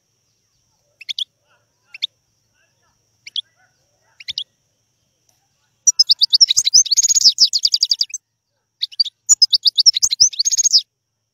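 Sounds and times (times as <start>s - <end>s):
wild European goldfinch singing rapid twittering and liquid trilled notes: 1.0s - 1.3s, 3.2s - 4.5s, 5.8s - 8.2s, 8.8s - 10.8s.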